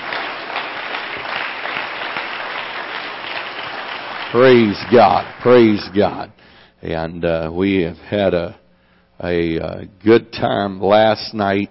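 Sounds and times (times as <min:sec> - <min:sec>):
roomful of people applauding: 0:00.0 - 0:06.3
speech: 0:04.3 - 0:08.6, 0:09.2 - 0:11.6.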